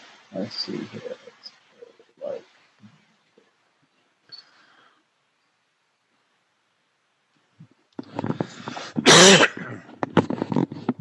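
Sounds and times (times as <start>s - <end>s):
speech: 0.3s - 1.6s, 9.2s - 9.4s
smaller throaty hacks and breaths: 8.0s - 10.2s
loud raspy cough: 9.0s - 9.9s.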